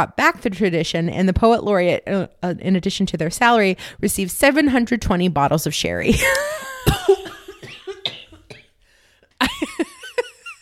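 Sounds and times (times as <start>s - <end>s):
speech: 0.0s - 6.6s
person coughing into the microphone: 6.3s - 8.8s.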